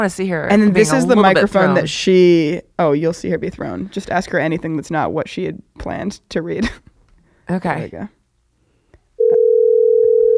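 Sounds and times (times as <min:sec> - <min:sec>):
speech: 0:00.0 - 0:06.9, 0:07.5 - 0:08.2
telephone dial tone: 0:09.2 - 0:10.3.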